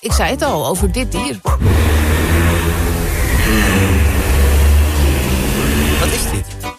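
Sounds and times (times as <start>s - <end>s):
speech: 0.2s - 2.8s, 3.4s - 4.2s
giraffe low droning hum: 1.6s - 6.4s.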